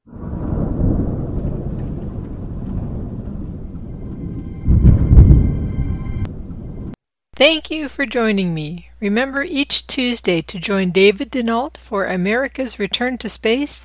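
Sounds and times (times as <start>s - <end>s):
deep rolling thunder of a thunderstorm: 0.0s - 7.0s
speech: 7.4s - 13.8s.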